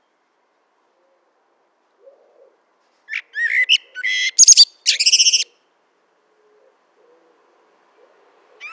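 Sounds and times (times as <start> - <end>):
common blackbird Turdus merula singing: 3.1 - 5.5.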